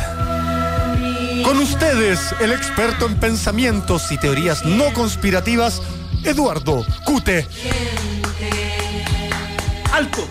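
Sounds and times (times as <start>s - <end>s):
sustained musical backing: 0.0s - 10.2s
speech: 1.5s - 8.0s
steady rhythmic clapping: 7.1s - 10.2s.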